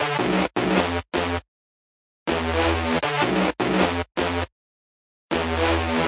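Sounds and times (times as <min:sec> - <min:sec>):
ripping spy-style bass line: 0:00.0 - 0:01.4, 0:02.3 - 0:04.5, 0:05.3 - 0:06.0.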